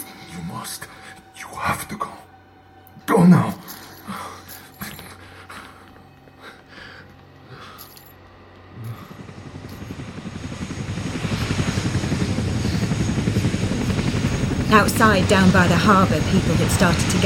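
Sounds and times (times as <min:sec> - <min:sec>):
speech: 0:00.6 - 0:01.0, 0:14.8 - 0:17.2
Chinook helicopter rotors thudding: 0:08.6 - 0:17.2.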